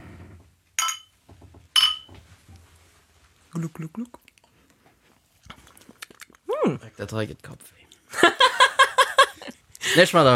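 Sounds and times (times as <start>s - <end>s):
glasses clinking in a toast: 0.8s - 2.2s
speech: 3.6s - 4.3s, 6.7s - 8.3s, 10.0s - 10.3s
laughter: 8.2s - 10.2s.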